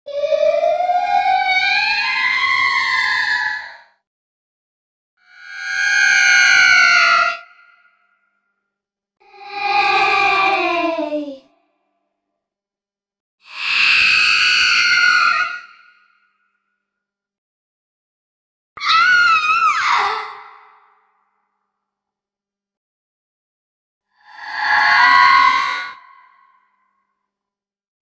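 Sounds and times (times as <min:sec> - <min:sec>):
creepy little girl horror sounds: 0:00.1 - 0:04.0, 0:05.3 - 0:08.3, 0:09.2 - 0:11.7, 0:13.5 - 0:16.4, 0:18.8 - 0:21.4, 0:24.1 - 0:26.8.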